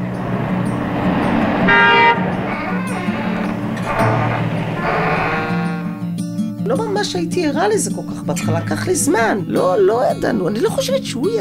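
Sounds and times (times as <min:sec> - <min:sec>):
car horns honking on a Tel Aviv street: 0:00.0 - 0:06.2
steady hum of street traffic on a Tel Aviv street: 0:00.0 - 0:07.3
speech: 0:07.0 - 0:11.3.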